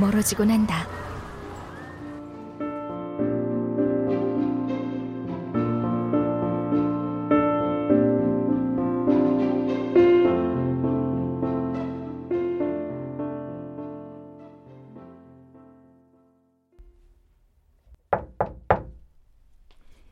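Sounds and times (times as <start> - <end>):
speech: 0.0 - 1.0
music: 1.6 - 16.8
knocking on a bedroom door: 17.9 - 19.1.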